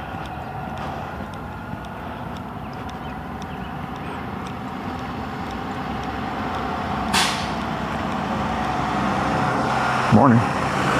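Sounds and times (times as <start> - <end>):
heavy school bus engine rumbling: 0.0 - 10.9
school bus air brakes releasing: 7.1 - 7.7
speech: 10.1 - 10.5.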